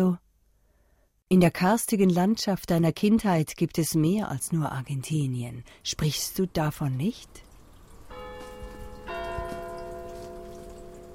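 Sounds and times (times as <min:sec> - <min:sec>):
speech: 0:00.0 - 0:00.2, 0:01.3 - 0:07.5
soft patter like light rain: 0:07.0 - 0:11.1
church bell ringing in Ticino: 0:08.1 - 0:11.1.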